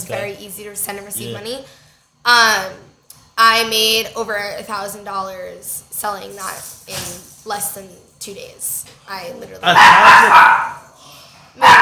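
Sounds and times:
speech: 0.1s - 10.8s
dog barking: 9.6s - 10.9s, 11.6s - 11.8s.

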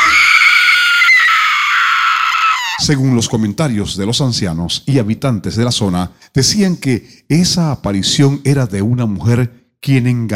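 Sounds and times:
woman's wailing scream: 0.0s - 2.8s
speech: 2.8s - 10.3s.

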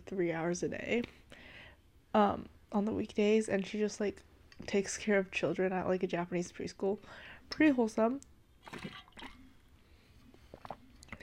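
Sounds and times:
speech: 0.1s - 1.5s, 2.1s - 9.1s
soft mouth sounds: 10.2s - 11.2s
faint swallowing clicks: 10.3s - 11.2s
quick wet sips of water: 10.5s - 11.2s.

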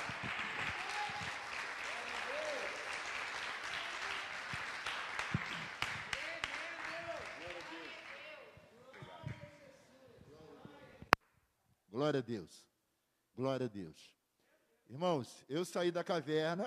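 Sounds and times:
audience applauding: 0.0s - 8.4s
speech: 12.0s - 12.7s, 13.4s - 14.2s, 14.9s - 16.6s.

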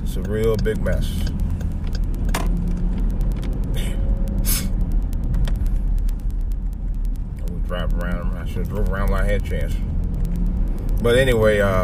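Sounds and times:
steady loud low rumble of road traffic: 0.0s - 11.8s
speech: 0.2s - 1.4s, 7.7s - 10.0s, 11.0s - 11.8s
air-brake hiss from a bus on the road ahead: 4.4s - 4.7s.

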